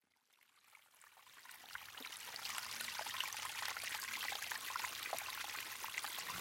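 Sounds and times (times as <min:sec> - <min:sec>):
small mountain stream babbling over rocks in forest: 0:02.0 - 0:06.3.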